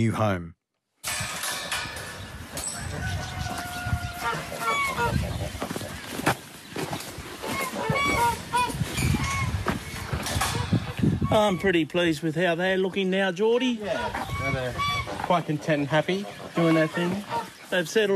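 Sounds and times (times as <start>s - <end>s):
speech: 0.0s - 0.6s, 11.3s - 18.1s
African geese honking: 2.7s - 6.4s, 7.3s - 12.0s, 13.8s - 18.1s.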